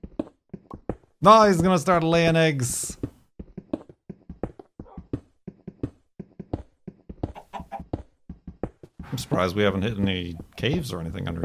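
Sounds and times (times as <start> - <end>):
speech: 1.2 - 3.0, 9.3 - 11.4
chicken clucking: 7.1 - 8.0.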